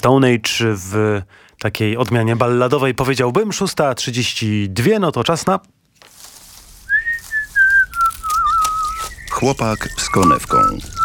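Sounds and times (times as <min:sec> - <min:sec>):
speech: 0:00.0 - 0:05.8, 0:09.4 - 0:11.0
person whistling a tune: 0:06.8 - 0:11.0.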